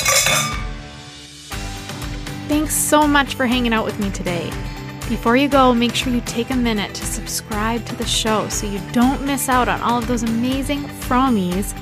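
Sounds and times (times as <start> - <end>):
glasses clinking in a toast: 0.0 - 0.8
speech: 2.5 - 11.8.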